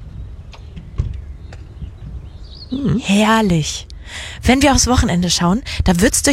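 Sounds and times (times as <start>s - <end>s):
birds chirping outdoors: 0.0s - 4.3s
steady low outdoor rumble: 0.0s - 6.3s
speech: 2.7s - 6.3s.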